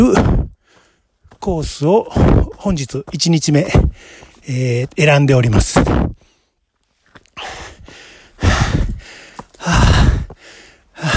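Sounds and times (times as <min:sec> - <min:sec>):
speech: 0:01.4 - 0:06.3
heavy panting while hiking uphill on a mountain trail: 0:03.8 - 0:04.4, 0:07.4 - 0:11.1.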